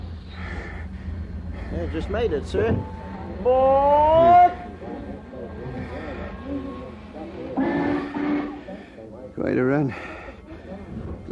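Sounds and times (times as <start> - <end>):
commuter train rumbling along the tracks: 0.0 - 9.2
indistinct voices: 0.0 - 11.3
speech: 1.7 - 4.3, 9.3 - 10.2
commuter train whistle blast: 2.8 - 4.8, 7.6 - 8.8.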